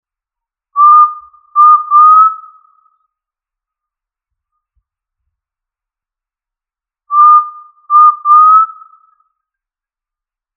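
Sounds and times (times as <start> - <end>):
quail of family Tinamidae whistling: 0.8 - 2.9, 7.1 - 9.2.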